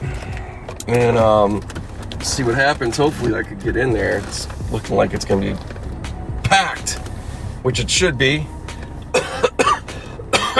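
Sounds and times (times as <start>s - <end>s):
speech: 0.9s - 5.7s, 6.5s - 7.0s, 7.6s - 8.6s
person coughing harshly: 9.1s - 10.5s.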